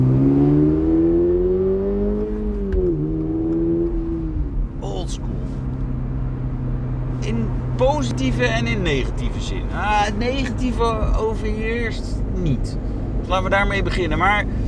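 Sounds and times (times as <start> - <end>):
Toyota GR86 front-engined rear-wheel drive sports car engine revving during test drive: 0.0 - 11.5
speech: 8.0 - 14.6.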